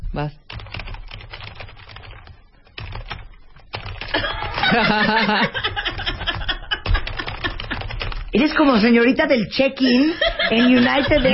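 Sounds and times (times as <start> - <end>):
speech: 0.1 - 0.5, 4.1 - 5.7, 8.4 - 11.3
loud rapid computer keyboard typing: 0.5 - 8.6
laughter: 4.1 - 8.0, 9.8 - 11.3.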